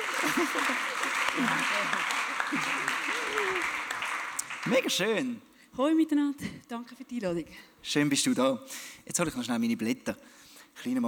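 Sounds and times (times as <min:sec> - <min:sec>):
laughter: 0:00.0 - 0:03.8
audience applause: 0:00.0 - 0:05.2
speech: 0:00.2 - 0:03.9, 0:04.6 - 0:11.0.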